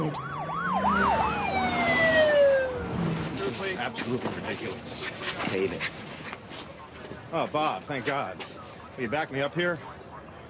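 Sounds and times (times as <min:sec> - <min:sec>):
long steady siren tones gliding downward: 0:00.0 - 0:03.8, 0:06.0 - 0:10.4
police car sirens wailing as police cars arrive at a pier: 0:00.0 - 0:04.9, 0:06.4 - 0:10.4
speech: 0:04.0 - 0:06.1, 0:07.3 - 0:09.9.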